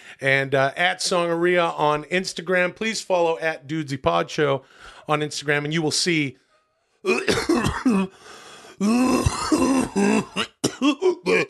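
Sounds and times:
speech: 0.1s - 6.4s, 7.0s - 11.4s
throat clearing: 7.1s - 8.1s, 8.8s - 11.4s
person coughing: 7.1s - 8.2s, 8.8s - 11.4s.

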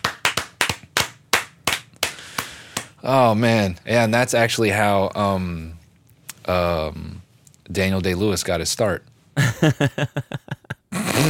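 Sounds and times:
slow hand clapping: 0.0s - 3.0s
speech: 3.0s - 5.8s, 6.4s - 10.6s.

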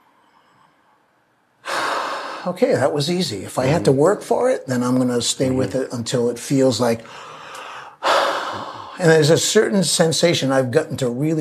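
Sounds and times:
deep breath: 1.6s - 2.5s, 7.0s - 9.0s
speech: 2.4s - 7.4s, 9.0s - 11.3s.

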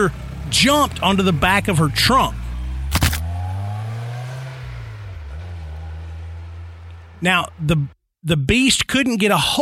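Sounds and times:
speech: 0.0s - 2.4s, 7.2s - 9.6s
car engine cranking and starting: 0.0s - 7.9s.

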